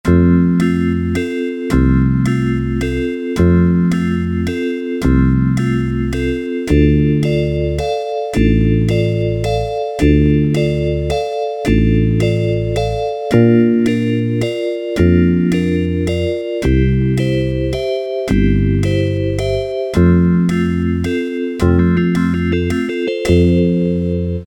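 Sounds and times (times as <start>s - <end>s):
Yamaha SHS-10 keyboard march factory demo: 0.0s - 24.4s.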